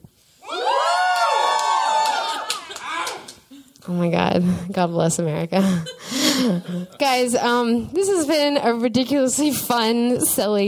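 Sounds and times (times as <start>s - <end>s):
live crowd hollering and high-pitched screaming: 0.4s - 3.4s
people clapping: 0.9s - 3.6s
speech: 3.9s - 10.6s
laughter: 5.6s - 7.1s.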